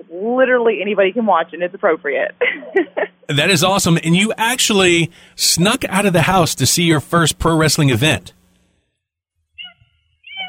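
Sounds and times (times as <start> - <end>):
speech: 0.1 - 8.4
female cat meowing: 9.6 - 10.4.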